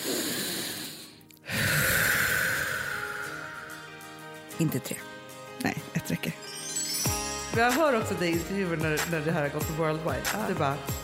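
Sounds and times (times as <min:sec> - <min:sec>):
group taking deep breaths together: 0:00.0 - 0:04.1
speech: 0:04.6 - 0:06.6, 0:07.6 - 0:11.0.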